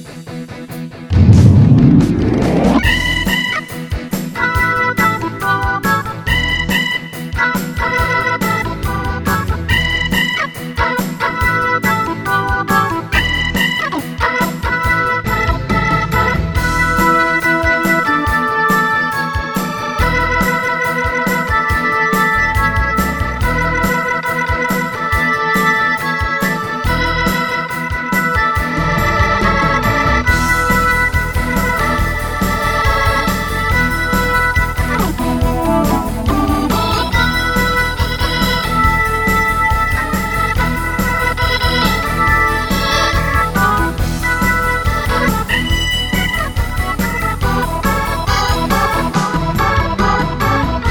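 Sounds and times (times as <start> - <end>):
Hammond organ playing rock: 1.1 - 50.8.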